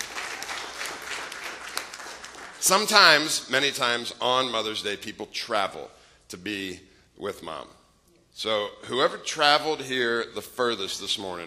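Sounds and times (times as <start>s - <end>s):
audience applause for a prize winner at a Mother's Day gathering: 0.0s - 3.0s
speech: 2.6s - 7.8s, 8.4s - 11.4s.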